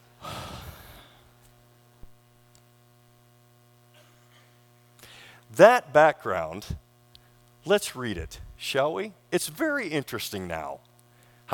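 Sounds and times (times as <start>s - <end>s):
electrical hum: 0.0s - 11.5s
person yawning during a church sermon: 0.2s - 1.2s
speech: 5.5s - 6.8s, 7.6s - 10.9s.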